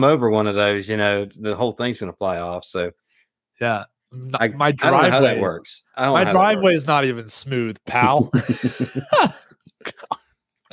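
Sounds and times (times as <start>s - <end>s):
speech: 0.0s - 3.0s, 3.6s - 10.7s
laughter: 6.0s - 6.6s, 7.9s - 9.5s
person clearing throat: 9.8s - 10.7s.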